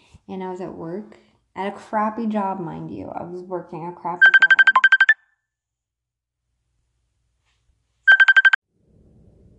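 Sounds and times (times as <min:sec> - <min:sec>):
speech: 0:00.3 - 0:04.6
phone ringtone of rapid electronic trills for an incoming phone call: 0:04.2 - 0:05.2, 0:08.1 - 0:08.6.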